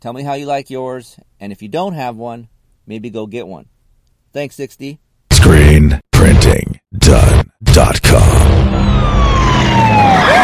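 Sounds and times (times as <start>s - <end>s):
speech: 0.0s - 8.9s
police siren wailing: 8.5s - 10.4s.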